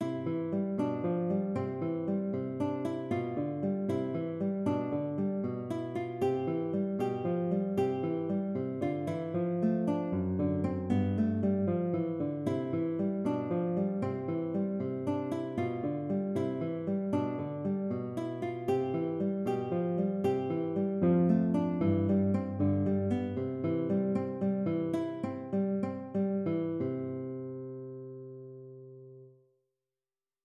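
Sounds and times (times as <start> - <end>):
concert guitar piece: 0.0 - 29.4.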